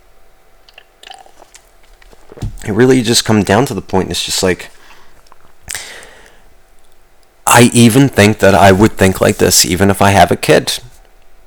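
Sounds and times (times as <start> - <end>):
person sipping a drink: 0.7 - 2.6, 4.8 - 6.4
speech: 2.4 - 4.8, 7.6 - 10.9.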